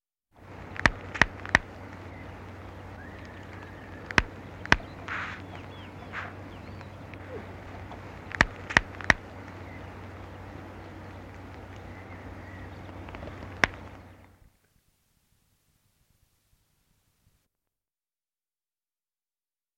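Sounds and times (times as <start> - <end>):
tawny owl calling: 0.7 - 14.1.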